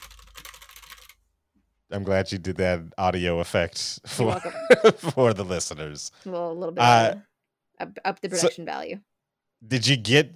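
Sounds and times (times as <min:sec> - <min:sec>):
typing on a computer keyboard: 0:00.0 - 0:01.2
speech: 0:01.9 - 0:10.3
laughter: 0:04.0 - 0:06.1.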